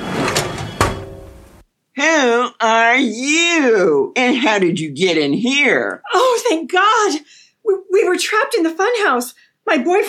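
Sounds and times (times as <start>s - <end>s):
desk drawer rolling: 0.0s - 1.6s
speech: 2.6s - 10.0s.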